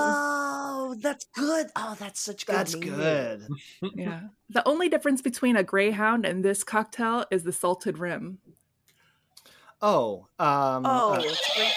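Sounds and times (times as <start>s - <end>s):
person imitating a horse's neigh: 0.0s - 0.7s
speech: 1.1s - 8.6s, 9.8s - 11.7s.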